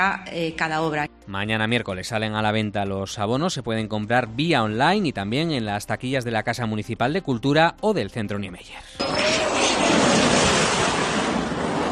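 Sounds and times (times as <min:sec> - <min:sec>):
speech: 0:00.0 - 0:10.1
F-18 fighter jet flying over San Lorenzo bay in Gijón: 0:09.0 - 0:11.9.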